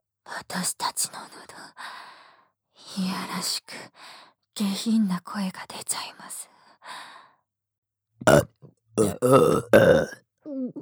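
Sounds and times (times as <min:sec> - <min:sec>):
speech: 0:00.3 - 0:02.1, 0:02.8 - 0:07.1, 0:08.2 - 0:10.7
loud burps: 0:08.2 - 0:10.2.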